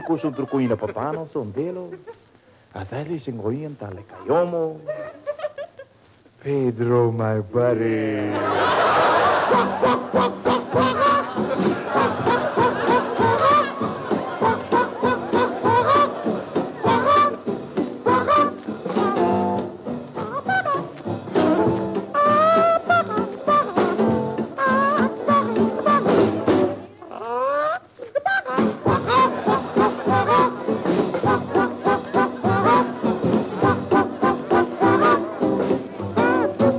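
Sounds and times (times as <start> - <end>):
laughter: 0.0 - 2.3, 4.1 - 6.0, 8.3 - 17.5, 27.4 - 36.6
speech: 0.1 - 5.2, 6.4 - 8.8, 9.5 - 12.3
upbeat rhythmic tune on an old military radio broadcast recording: 8.6 - 26.9, 28.4 - 36.7.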